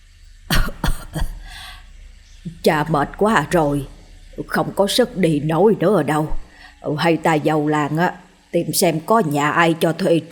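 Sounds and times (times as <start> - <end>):
old man clearing throat and coughing: 0.5 - 1.7
speech: 2.4 - 10.3.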